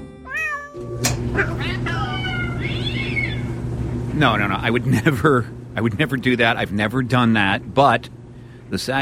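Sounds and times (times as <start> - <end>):
steady low mechanical rumble: 0.0 - 9.0
several cats meowing and yowling: 0.2 - 1.2, 1.9 - 3.6
speech: 1.0 - 2.1, 4.2 - 9.0.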